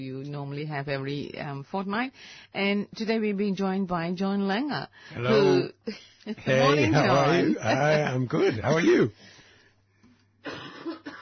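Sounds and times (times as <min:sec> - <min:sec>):
speech: 0:00.0 - 0:09.3
faint low hum: 0:00.0 - 0:11.2
person coughing: 0:10.4 - 0:11.2.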